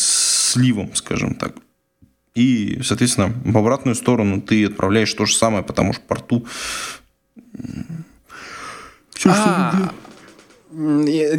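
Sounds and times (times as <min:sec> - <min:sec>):
speech: 0:00.5 - 0:01.6, 0:02.4 - 0:07.0, 0:09.2 - 0:10.0, 0:10.7 - 0:11.3
person yawning: 0:07.4 - 0:10.0
laughter: 0:09.2 - 0:10.5.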